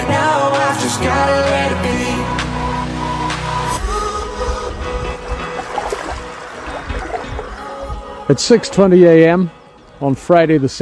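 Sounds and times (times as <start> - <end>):
speech: 0.2 - 2.4, 8.3 - 10.7
sustained musical tone: 0.2 - 10.4
low rumble: 1.8 - 8.3
calm ocean water washing on a cold morning: 3.9 - 8.4
water trickling: 4.7 - 8.3.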